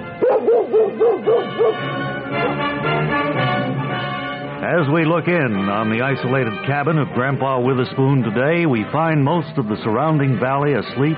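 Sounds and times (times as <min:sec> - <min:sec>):
music: 0:00.0 - 0:11.1
dog barking: 0:00.2 - 0:02.6
speech: 0:00.8 - 0:02.7, 0:04.6 - 0:11.1.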